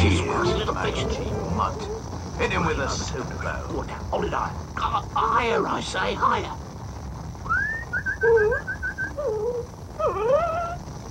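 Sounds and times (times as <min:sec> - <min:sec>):
low rumble: 0:00.0 - 0:11.0
speech: 0:00.7 - 0:06.6, 0:08.2 - 0:10.7
dog whimpering: 0:08.1 - 0:10.9.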